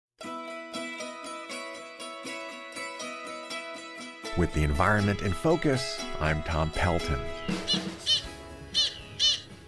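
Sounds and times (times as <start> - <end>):
speech: 4.4 - 8.3
black skimmer calling: 7.4 - 9.5.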